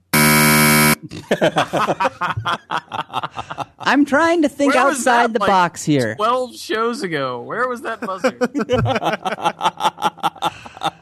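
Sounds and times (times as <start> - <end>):
loud harsh fail buzzer: 0.0 - 1.0
laughter: 1.0 - 4.1, 7.7 - 11.0
speech: 1.0 - 10.2.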